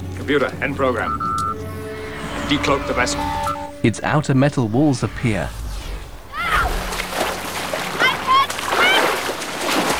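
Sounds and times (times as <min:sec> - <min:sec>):
speech: 0:00.3 - 0:01.3, 0:02.5 - 0:05.6
water splashing as two people dive from a ship into a lake: 0:06.3 - 0:09.9.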